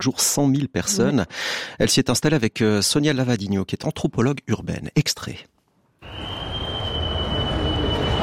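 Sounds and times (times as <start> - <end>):
speech: 0.0 - 6.3
high-pitched whine of rail noise: 6.0 - 8.2
rail noise rumbling at a busy railway station in Bern: 6.0 - 8.2.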